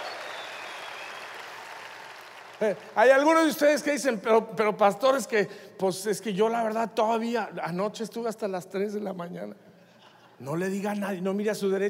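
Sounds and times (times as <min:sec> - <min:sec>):
congregation applauding: 0:00.0 - 0:03.3
speech: 0:02.6 - 0:09.6, 0:10.4 - 0:11.8.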